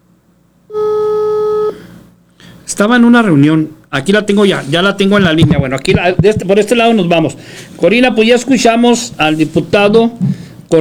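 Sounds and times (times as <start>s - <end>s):
faint hum: 0.0s - 10.7s
telephone ringback tone while a call is being dialed: 0.7s - 1.8s
speech: 2.7s - 10.7s.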